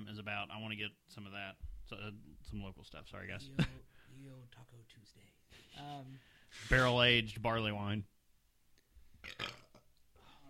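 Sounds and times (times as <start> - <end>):
speech: 0.2 - 8.2, 9.2 - 9.7
burp while drinking beer: 9.2 - 9.9.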